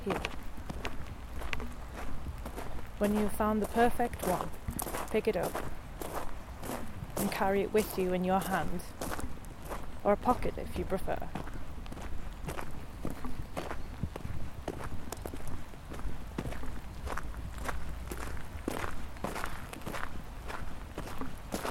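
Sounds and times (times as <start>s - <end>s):
speech: 0.0s - 0.4s, 3.0s - 5.7s, 7.2s - 9.1s, 10.0s - 11.4s
constant low outdoor rumble: 0.0s - 21.7s
footsteps crunching along a park path: 0.0s - 21.7s.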